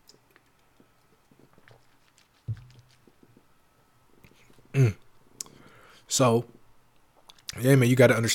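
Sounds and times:
soft low bump: 0:02.5 - 0:02.8
speech: 0:04.8 - 0:05.0, 0:06.1 - 0:06.5, 0:07.6 - 0:08.3.

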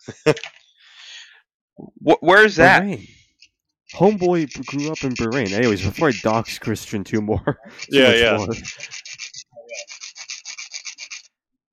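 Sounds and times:
speech: 0:00.0 - 0:00.5, 0:02.1 - 0:03.1, 0:04.0 - 0:09.0
laughter: 0:00.0 - 0:00.6, 0:04.0 - 0:09.0
back-and-forth sanding strokes: 0:04.0 - 0:06.5, 0:07.8 - 0:11.3.

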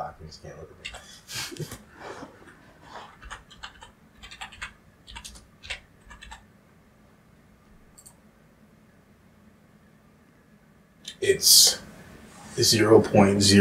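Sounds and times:
speech: 0:00.2 - 0:01.8, 0:11.3 - 0:11.8, 0:12.6 - 0:13.5
typing on a computer keyboard: 0:00.8 - 0:01.1, 0:03.0 - 0:06.4.

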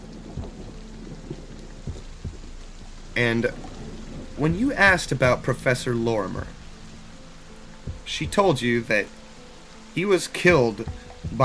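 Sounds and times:
deep thunder rumbling: 0:00.0 - 0:08.9
heavy dense rain downpour: 0:00.0 - 0:11.4
speech: 0:03.2 - 0:03.7, 0:04.4 - 0:06.6, 0:08.1 - 0:09.2, 0:10.0 - 0:11.4.

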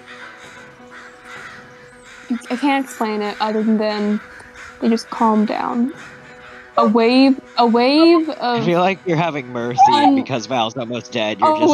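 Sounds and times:
raven cawing: 0:00.0 - 0:08.4
speech: 0:02.3 - 0:06.2, 0:06.8 - 0:11.7
laughter: 0:06.8 - 0:11.7.

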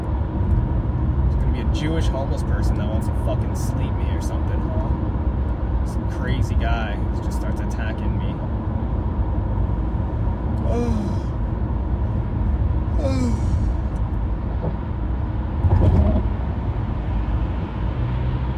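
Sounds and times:
busy road traffic of cars and buses: 0:00.0 - 0:18.5
speech: 0:01.8 - 0:05.2, 0:05.9 - 0:08.5, 0:10.6 - 0:11.2, 0:13.0 - 0:13.5
louder vehicle surging by: 0:09.4 - 0:18.5.

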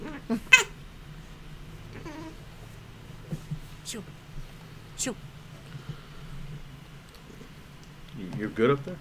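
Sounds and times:
house cat meowing faintly: 0:00.0 - 0:00.8, 0:01.9 - 0:02.4
speech: 0:03.9 - 0:04.2, 0:05.0 - 0:05.3, 0:08.4 - 0:08.9.

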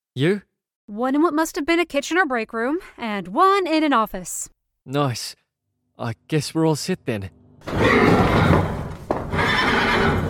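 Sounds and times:
speech: 0:00.2 - 0:05.4, 0:06.0 - 0:08.6
horse neighing: 0:07.6 - 0:10.2.

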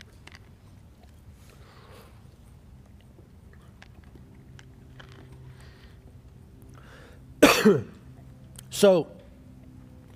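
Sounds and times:
person coughing while putting in a cough drop: 0:07.4 - 0:08.0
speech: 0:07.6 - 0:07.9, 0:08.8 - 0:09.2.

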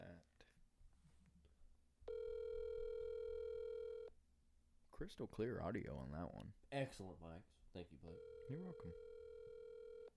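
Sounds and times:
telephone tone after a number is dialed by accident: 0:02.1 - 0:04.1, 0:08.2 - 0:10.1
speech: 0:05.0 - 0:09.1.

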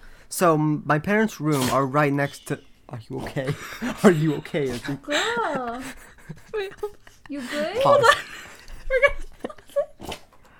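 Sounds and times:
speech: 0:00.3 - 0:09.3
dog sneezing repeatedly: 0:01.5 - 0:02.0
laughter: 0:03.1 - 0:10.0.

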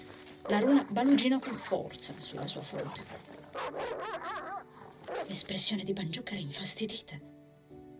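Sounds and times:
speech: 0:00.5 - 0:04.4, 0:05.1 - 0:07.3
dog growling and barking: 0:00.5 - 0:05.5.

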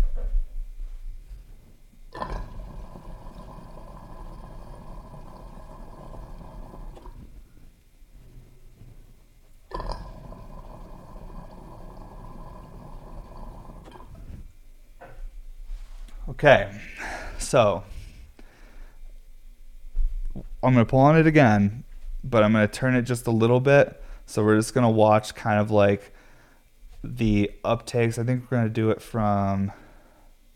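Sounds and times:
water and bubbles gushing and gurgling down drains: 0:02.1 - 0:07.3, 0:09.7 - 0:14.4
speech: 0:16.4 - 0:17.9, 0:20.6 - 0:26.1, 0:27.0 - 0:29.8.

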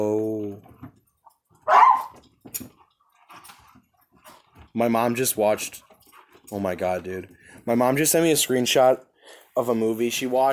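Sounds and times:
dog barking: 0:01.6 - 0:02.2
speech: 0:04.8 - 0:05.9, 0:06.5 - 0:10.5.

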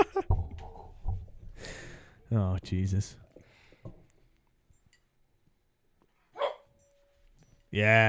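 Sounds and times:
speech: 0:02.3 - 0:03.2, 0:07.7 - 0:08.0
dog barking: 0:06.3 - 0:06.7.

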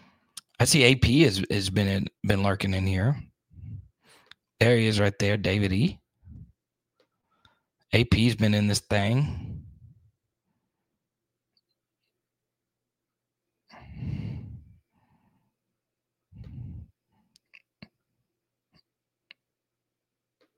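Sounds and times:
heavy breaths blowing into a microphone: 0:00.0 - 0:00.4, 0:03.2 - 0:04.4, 0:06.2 - 0:07.7, 0:09.2 - 0:11.0, 0:13.7 - 0:15.6, 0:16.3 - 0:17.3
speech: 0:00.6 - 0:03.3, 0:04.6 - 0:06.0, 0:07.9 - 0:09.5.

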